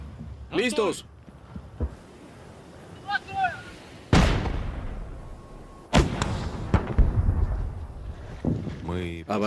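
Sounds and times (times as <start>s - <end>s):
speech: 0.6s - 1.1s
heavy artillery booms during an advance toward Kherson: 4.1s - 8.7s.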